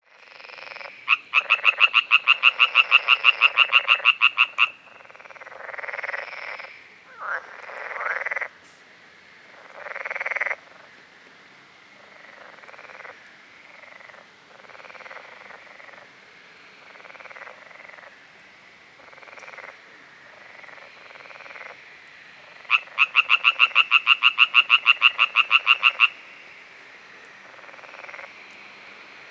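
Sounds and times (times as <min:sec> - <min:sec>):
tree frog calling: 0:00.1 - 0:08.8, 0:09.5 - 0:11.0, 0:12.0 - 0:29.2.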